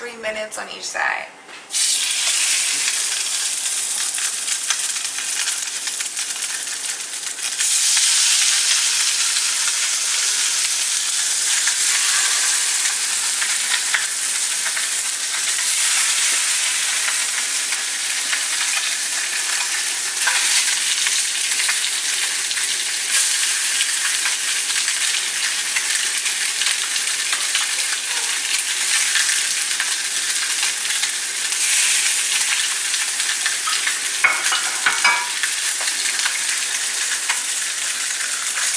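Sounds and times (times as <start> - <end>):
speech: 0.2 - 1.9
fish frying in olive oil in a pan: 1.7 - 38.7.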